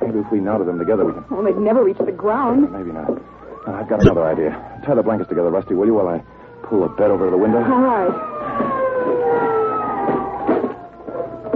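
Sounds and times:
speech: 0.2 - 8.7
police car siren winding down as the car stops in front of a house: 2.4 - 11.5.

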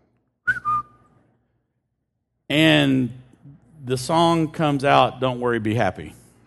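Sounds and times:
person whistling to trigger a phone-finder app: 0.4 - 1.2
speech: 2.5 - 3.2, 3.8 - 6.2.

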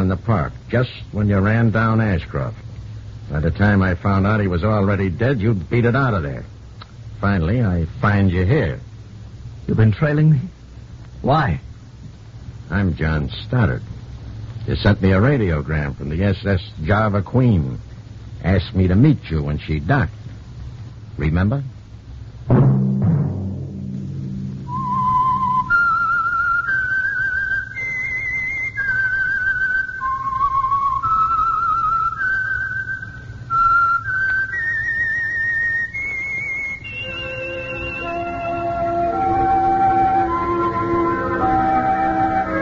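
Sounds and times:
speech: 0.1 - 2.7, 3.3 - 6.5, 7.2 - 8.9, 9.6 - 10.6, 11.2 - 11.7, 12.7 - 13.9, 14.6 - 20.2, 21.2 - 21.7, 22.5 - 23.2
whistled melody: 24.7 - 42.5
orchestral music: 36.9 - 42.5.

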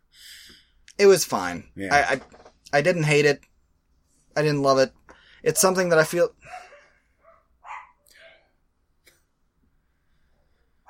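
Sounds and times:
speech: 1.0 - 3.5, 4.4 - 6.6
dog barking: 6.4 - 8.4.

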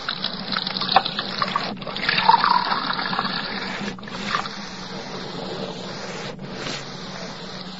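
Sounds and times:
water running into a glass in a kitchen: 0.0 - 4.4.

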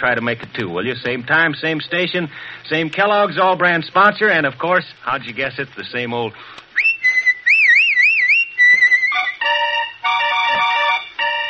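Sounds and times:
speech: 0.0 - 6.6
person whistling a short tune: 6.8 - 9.4
fuller chord-like tones: 8.7 - 11.4.

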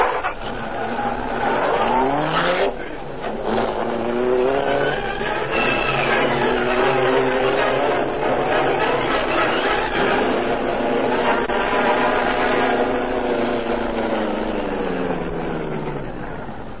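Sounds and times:
car engine revving and accelerating as the car pulls away from a driveway: 0.0 - 16.7.

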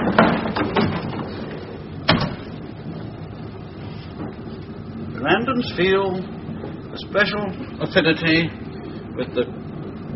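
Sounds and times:
heavy clunks: 0.0 - 2.6
train carriage rolling along: 0.0 - 10.1
speech: 5.6 - 6.4, 7.0 - 8.6, 9.2 - 9.6.

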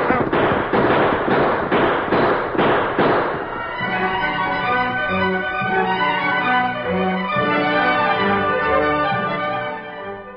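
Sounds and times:
gunshots in a Western gunfight at a mission: 0.0 - 5.1
orchestral music: 3.3 - 10.3.

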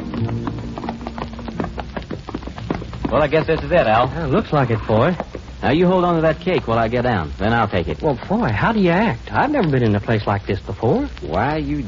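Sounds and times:
horses' hooves of two riders coming into town: 0.0 - 11.8
speech: 3.1 - 11.8.

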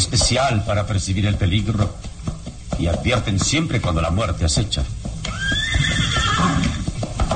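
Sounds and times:
horse hooves clip-clopping while walking: 0.0 - 7.3
speech: 0.1 - 2.1, 2.8 - 5.0
horse whinnying: 5.2 - 7.3.

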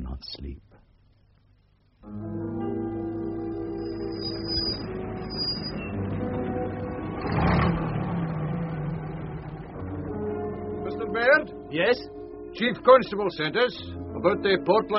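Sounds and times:
speech: 0.2 - 0.7, 2.0 - 2.4, 11.7 - 14.9
car engine starting and running: 3.6 - 11.4.

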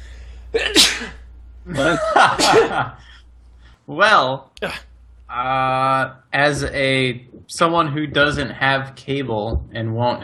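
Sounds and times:
quiet steady hum: 0.0 - 10.2
speech: 0.5 - 3.0, 3.9 - 10.2
person sneezing: 0.6 - 1.2
laughter: 1.7 - 3.0.

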